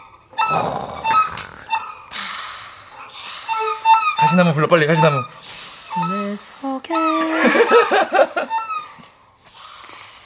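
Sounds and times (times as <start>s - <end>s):
speech: 0.5s - 0.9s, 4.3s - 8.6s
person imitating seagull calls with their voice: 0.5s - 1.8s.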